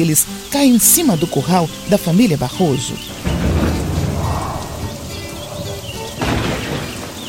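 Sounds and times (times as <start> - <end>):
speech: 0.0 - 3.3
faint chirping tones: 1.0 - 7.2
heavy rain: 2.9 - 7.2
deep thunder rumble: 3.1 - 7.2.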